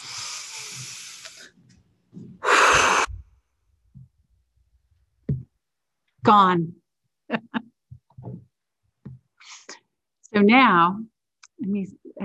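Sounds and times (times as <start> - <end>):
group of people taking a deep breath and blowing out: 0.0 - 1.6, 2.4 - 3.3
speech: 6.3 - 7.7, 10.4 - 12.2.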